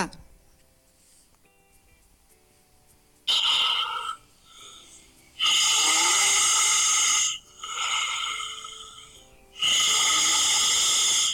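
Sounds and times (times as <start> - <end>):
loud rasping human snoring: 3.3 - 11.3.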